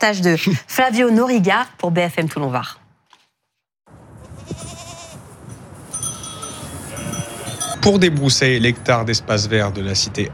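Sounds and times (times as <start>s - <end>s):
speech: 0.0s - 2.8s, 7.8s - 10.3s
sheep and goats bleating outdoors: 4.3s - 5.3s, 6.0s - 7.8s.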